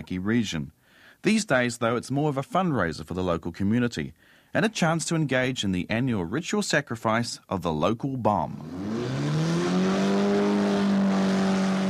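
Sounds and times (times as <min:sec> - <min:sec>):
speech: 0:00.0 - 0:09.0
car engine drained of oil and water revving with a brick on the accelerator: 0:08.5 - 0:11.8.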